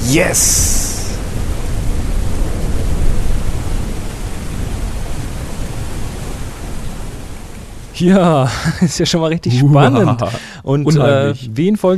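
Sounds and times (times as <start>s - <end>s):
deep rumble of thunder: 0.0s - 7.7s
steady heavy rain in a thunderstorm: 0.0s - 11.9s
speech: 0.1s - 1.0s, 8.0s - 11.9s
laughter: 8.3s - 11.4s.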